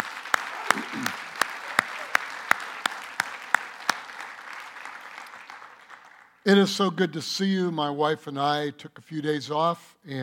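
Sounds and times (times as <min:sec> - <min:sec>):
audience applause: 0:00.0 - 0:06.4
speech: 0:06.5 - 0:10.2.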